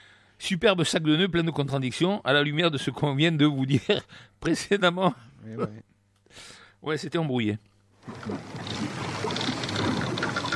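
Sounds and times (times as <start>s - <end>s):
speech: 0.4s - 8.7s
old wooden boat creaking: 8.0s - 10.5s
steady wash of water and hull noise: 8.0s - 10.5s.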